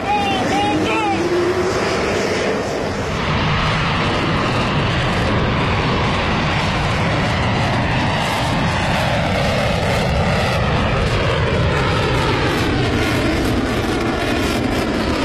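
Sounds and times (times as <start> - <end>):
J-15 fighter jets taking off from an aircraft carrier: 0.0 - 15.2.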